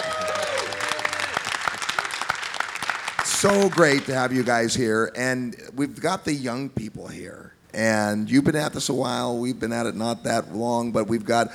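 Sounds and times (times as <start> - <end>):
crowd whooping: 0.0 - 4.0
audience applause of many hands clapping: 0.0 - 4.4
speech: 3.4 - 11.5.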